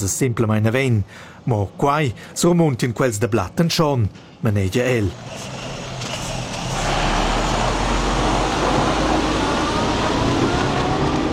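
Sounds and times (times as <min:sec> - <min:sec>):
speech: 0:00.0 - 0:05.7
heavy truck rumbling past: 0:05.1 - 0:11.3.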